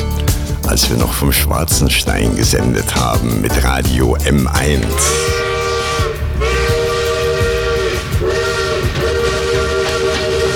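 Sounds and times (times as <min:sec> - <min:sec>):
speech: 0:00.7 - 0:05.4
locomotive whistle in a radio station jingle: 0:04.8 - 0:10.5
clattering rumble of a moving train: 0:05.0 - 0:10.5.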